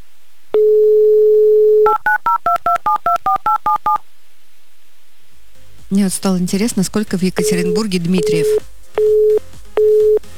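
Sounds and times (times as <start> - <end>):
telephone dial tone: 0.6 - 2.4, 7.4 - 10.2
touch-tone phone keypad beeps at shifting pitches: 0.6 - 4.0, 7.4 - 10.2
speech: 6.0 - 8.7.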